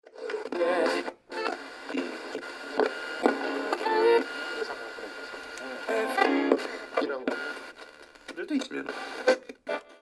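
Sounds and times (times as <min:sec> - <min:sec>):
old radio: 0:00.1 - 0:10.0.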